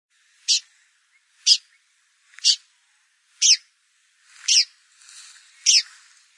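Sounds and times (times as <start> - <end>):
Blyth's pipit calls: 0.4 - 1.8, 2.4 - 2.7, 3.4 - 3.7, 4.4 - 4.7, 5.6 - 6.0.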